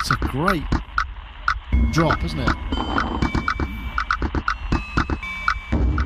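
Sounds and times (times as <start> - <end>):
speech: 0.1 - 0.9, 1.9 - 3.3
sparse bell-like chiming melody in a UK-made music track: 1.7 - 6.0.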